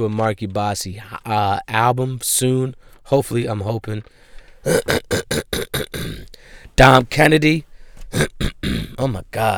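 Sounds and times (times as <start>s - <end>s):
speech: 0.0s - 9.5s
harsh coughing fit from a lingering cough: 4.6s - 6.4s, 8.1s - 9.0s.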